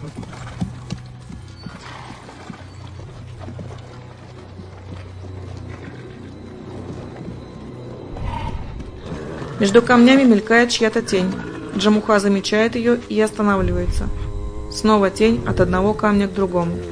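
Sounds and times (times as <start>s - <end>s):
ridden horse hooves clip-clopping across a stony forest edge: 0.0s - 13.3s
horse whinny: 1.5s - 3.0s, 8.1s - 12.2s
speech: 9.6s - 14.2s, 14.8s - 16.9s.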